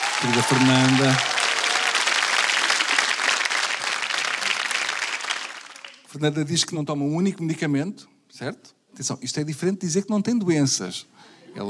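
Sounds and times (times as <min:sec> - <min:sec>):
audience applause: 0:00.0 - 0:06.1
speech: 0:00.2 - 0:01.4, 0:06.2 - 0:11.6.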